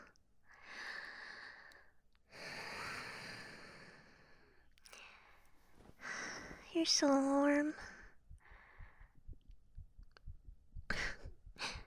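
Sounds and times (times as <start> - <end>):
fast heartbeat: 5.8 - 11.8
speech: 6.8 - 7.9.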